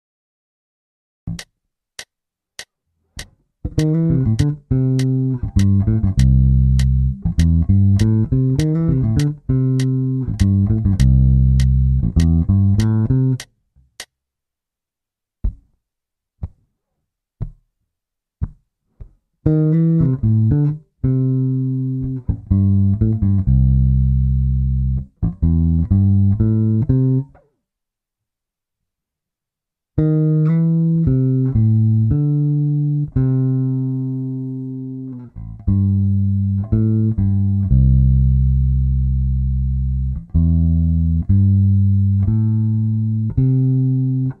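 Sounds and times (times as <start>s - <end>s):
bassline fill in C major: 3.2s - 14.1s, 18.4s - 27.4s, 30.0s - 44.3s.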